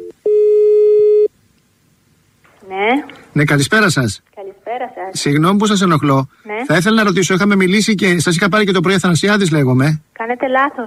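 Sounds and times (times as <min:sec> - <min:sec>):
steady electronic telephone busy tone: 0:00.0 - 0:01.3
speech: 0:03.4 - 0:04.3, 0:05.1 - 0:10.8.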